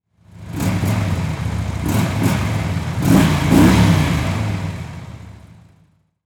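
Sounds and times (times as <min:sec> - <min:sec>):
motorcycle revving: 0:00.2 - 0:06.0.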